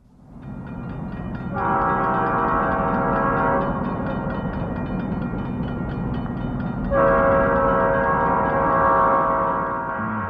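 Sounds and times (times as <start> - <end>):
train rumbling with rolling cars: 0.0 - 10.2
loud long train horn blasts: 1.5 - 4.4, 6.9 - 10.2.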